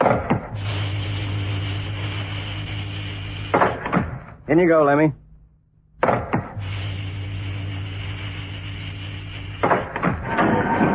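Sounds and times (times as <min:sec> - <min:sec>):
mechanical sliding door motorized hum: 0:00.0 - 0:04.5, 0:06.0 - 0:10.9
speech: 0:04.5 - 0:05.2.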